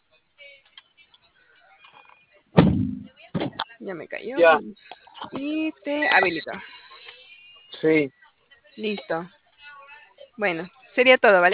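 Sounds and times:
faint indistinct sounds: 0.0 - 11.5
single heavy door thunking shut: 2.6 - 3.1
speech: 3.9 - 6.7, 7.8 - 8.2, 8.8 - 9.4, 10.4 - 11.5.

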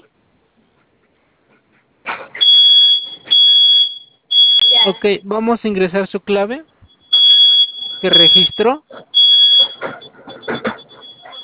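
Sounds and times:
security keypad panic alarm sounding: 2.4 - 5.2, 6.9 - 11.4
speech: 4.9 - 6.7, 8.0 - 9.1.

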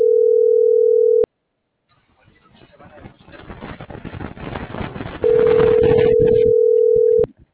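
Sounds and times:
telephone dial tone while dialing a number: 0.0 - 1.3, 5.3 - 7.3
rumble: 2.2 - 7.5.

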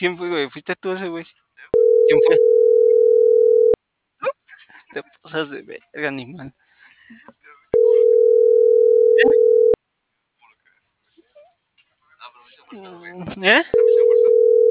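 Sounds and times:
speech: 0.0 - 2.8, 4.9 - 7.4, 12.7 - 14.2
telephone ringback tone while a call is dialing: 1.8 - 3.8, 7.8 - 9.8, 13.8 - 14.6.

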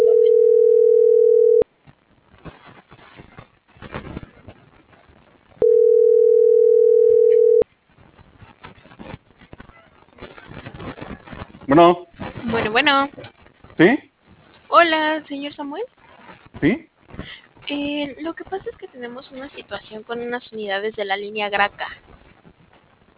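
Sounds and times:
telephone ringback tone after dialing a call: 0.0 - 1.6, 5.6 - 7.6
crackly telephone line hiss: 1.6 - 5.6, 7.4 - 23.1
speech: 11.8 - 12.0, 12.7 - 13.2, 13.8 - 14.0, 14.8 - 16.0, 16.6 - 16.9, 17.7 - 22.1.

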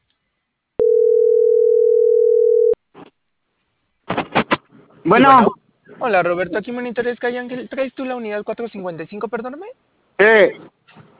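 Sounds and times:
telephone dial tone while dialing another number: 0.8 - 2.8
speech: 5.0 - 11.1.

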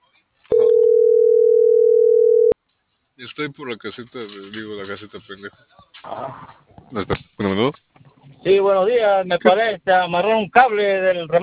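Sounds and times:
telephone ringing tone while a call is being placed: 0.5 - 2.6
speech: 3.4 - 7.8, 8.4 - 11.4.

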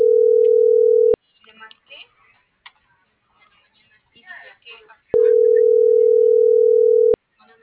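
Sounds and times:
phone ringback tone: 0.0 - 1.2, 5.2 - 7.2.

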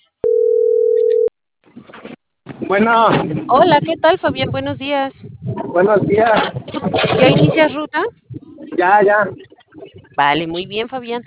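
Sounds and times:
electronic ringing tone of an outgoing telephone call: 0.2 - 1.3
speech: 2.7 - 8.2, 8.8 - 9.5, 10.2 - 11.2.

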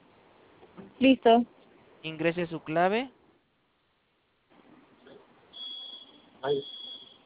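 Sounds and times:
room noise: 0.0 - 7.2
speech: 1.0 - 3.2, 6.4 - 6.8
shrill high-pitched electronic security alarm tone: 5.6 - 7.2.

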